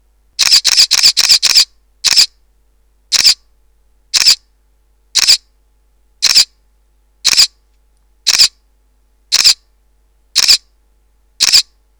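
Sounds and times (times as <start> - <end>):
Olympus E-620 camera shutter continuous hi shooting: 0.4 - 2.3, 3.1 - 3.4, 4.2 - 4.4, 5.2 - 5.4, 6.2 - 6.5, 7.3 - 7.5, 8.3 - 8.5, 9.3 - 9.6, 10.4 - 10.6, 11.4 - 11.7.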